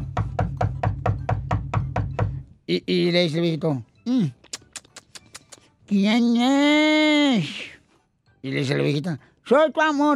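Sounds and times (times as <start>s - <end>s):
elderly man knocking on a bedroom door: 0.0s - 2.5s
speech: 2.7s - 4.4s, 5.9s - 7.7s, 8.4s - 10.1s.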